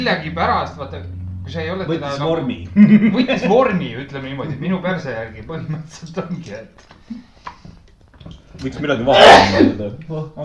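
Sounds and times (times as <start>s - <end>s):
speech: 0.0s - 7.6s, 8.6s - 10.4s
laughter: 2.6s - 7.3s
person sneezing close to the microphone: 9.2s - 9.7s.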